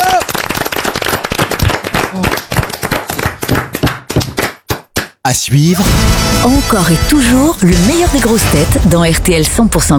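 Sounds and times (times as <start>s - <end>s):
studio audience applause: 0.0s - 4.9s
speech: 5.2s - 9.9s.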